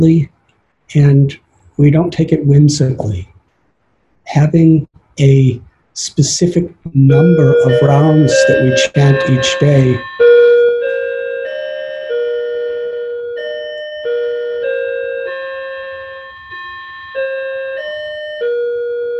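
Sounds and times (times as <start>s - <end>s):
speech: 0.0s - 0.3s, 0.9s - 3.3s, 4.3s - 10.2s
bells ringing a slow melodic sequence: 7.0s - 19.1s.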